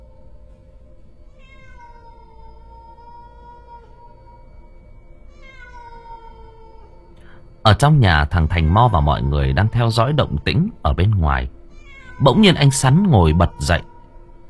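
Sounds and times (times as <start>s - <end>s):
steady low hum: 0.0s - 14.4s
cat meowing at night: 1.3s - 4.7s, 5.3s - 7.1s, 8.3s - 14.3s
speech: 7.7s - 11.6s, 12.2s - 13.9s.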